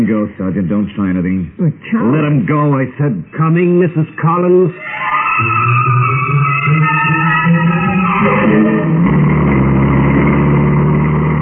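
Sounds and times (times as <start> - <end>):
speech: 0.0 - 9.1
car engine idling and revving as the car pulls away: 9.0 - 11.4.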